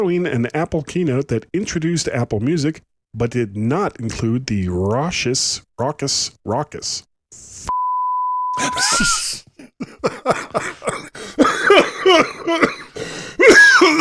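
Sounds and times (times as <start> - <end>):
speech: 0.0 - 7.8, 8.6 - 10.7, 11.3 - 12.8
steady electronic beep: 7.7 - 9.1
person coughing and clearing their throat: 8.6 - 14.0.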